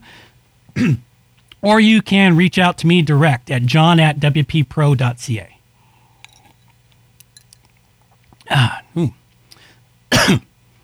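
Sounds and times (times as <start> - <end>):
coughing from a dry throat: 0.0 - 1.1, 8.4 - 10.5
throat clearing from a dry throat: 0.8 - 1.1, 8.4 - 9.2, 10.1 - 10.5
speech: 0.8 - 5.6, 8.5 - 9.2, 10.2 - 10.5.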